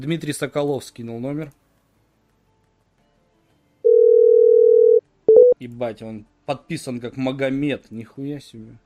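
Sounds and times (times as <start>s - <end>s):
speech: 0.0s - 1.6s, 5.6s - 8.8s
telephone ringback tone: 3.8s - 5.6s.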